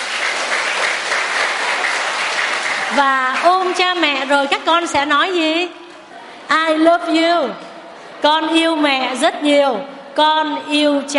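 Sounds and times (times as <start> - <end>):
crowd of children applauding at a Buddhist retreat: 0.0 - 4.6
speech: 2.9 - 5.8, 6.5 - 7.6, 8.2 - 11.1.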